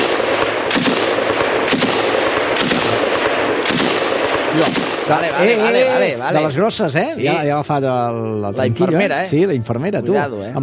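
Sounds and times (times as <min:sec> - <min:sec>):
heavy machine gun firing in bursts: 0:00.0 - 0:05.3
speech: 0:04.6 - 0:10.6.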